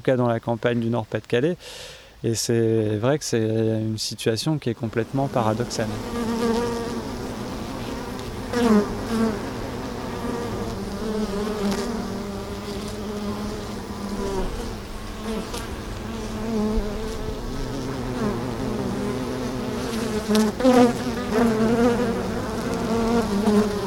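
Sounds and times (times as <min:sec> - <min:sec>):
speech: 0:00.0 - 0:06.4
many honeybees buzzing near a beehive: 0:04.8 - 0:23.8.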